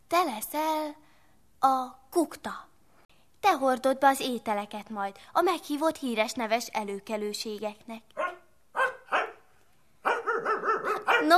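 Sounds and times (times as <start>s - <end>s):
speech: 0.1s - 2.7s, 3.4s - 8.2s
dog barking: 8.2s - 11.3s.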